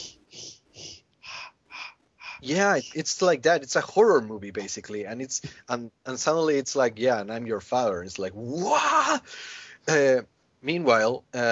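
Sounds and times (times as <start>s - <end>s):
voice mimicking mechanical respirator breathing: 0.0s - 3.0s
speech: 2.4s - 11.5s.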